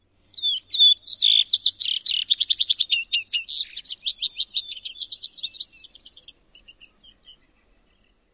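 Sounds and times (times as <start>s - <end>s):
vesper sparrow flight song: 0.0s - 8.3s.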